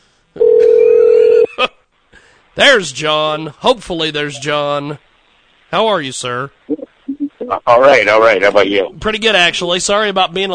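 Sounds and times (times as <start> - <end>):
loud steady electronic internet call ringing tone: 0.4 - 1.5
speech: 2.6 - 5.1, 5.7 - 6.7, 7.5 - 10.5.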